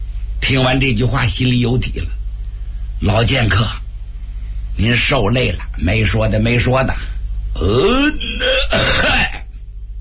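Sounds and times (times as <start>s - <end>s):
speech: 0.4s - 2.2s, 3.0s - 3.8s, 4.8s - 9.3s
man clearing his throat: 7.6s - 9.6s.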